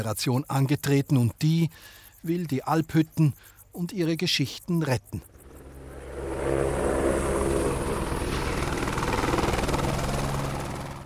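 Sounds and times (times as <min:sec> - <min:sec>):
speech: 0:00.0 - 0:05.3
helicopter rotor chop while descending to land: 0:05.2 - 0:11.0.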